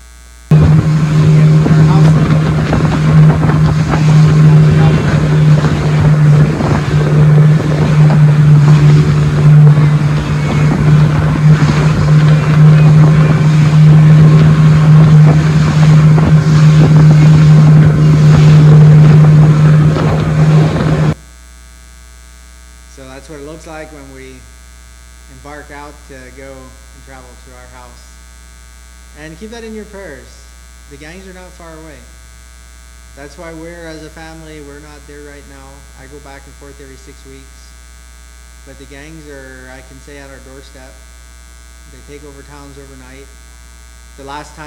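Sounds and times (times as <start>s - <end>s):
rushing water: 0.5s - 21.2s
wind noise: 0.5s - 21.2s
boat engine droning on open water: 0.5s - 21.3s, 22.8s - 28.0s, 29.1s - 44.6s.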